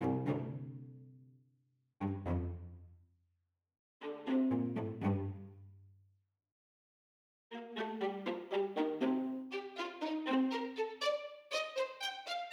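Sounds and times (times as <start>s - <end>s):
close-miked string ensemble playing spiccato: 0.0s - 0.9s, 2.0s - 2.8s, 4.0s - 5.6s, 7.6s - 12.4s.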